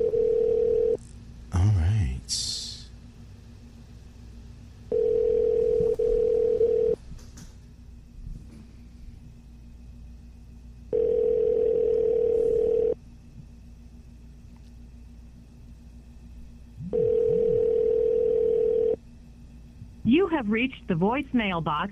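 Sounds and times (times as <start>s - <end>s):
telephone ringback tone while placing a call: 0.0s - 1.0s, 4.9s - 7.0s, 10.9s - 13.0s, 16.9s - 19.0s
speech: 20.4s - 21.9s.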